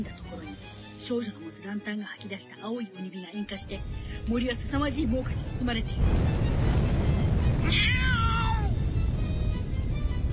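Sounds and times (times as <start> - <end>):
speech: 0.0 - 6.7, 7.6 - 8.1
steady loud rumbling roar of noise: 3.8 - 10.3
single drawn-out cat meow falling in pitch: 7.6 - 8.8.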